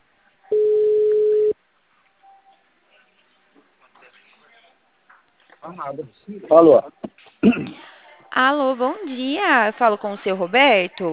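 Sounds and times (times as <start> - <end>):
telephone ringing tone while waiting for an answer: 0.5 - 1.6
speech: 5.7 - 7.8, 8.4 - 11.1.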